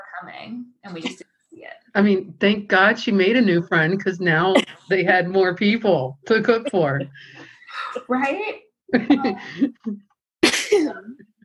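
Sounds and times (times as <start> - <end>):
speech: 0.1 - 10.0, 10.7 - 11.2
person sneezing: 10.4 - 11.0.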